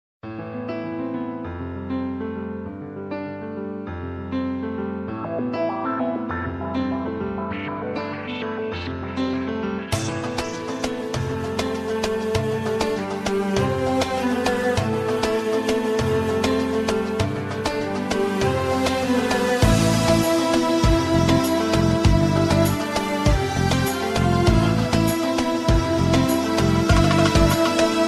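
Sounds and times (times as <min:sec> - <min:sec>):
piano tone: 0:00.2 - 0:28.0.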